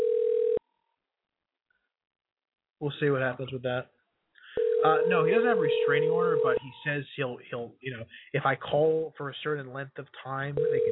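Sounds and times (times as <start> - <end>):
telephone dial tone of an outgoing call: 0.0 - 0.6, 4.6 - 5.1, 10.6 - 10.9
speech: 2.8 - 4.0, 4.8 - 10.9.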